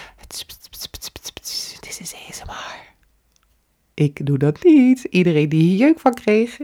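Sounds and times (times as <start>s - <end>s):
soft breathy ASMR-style whispering with sibilant bursts: 0.0s - 3.0s
speech: 2.0s - 3.0s, 4.0s - 6.6s.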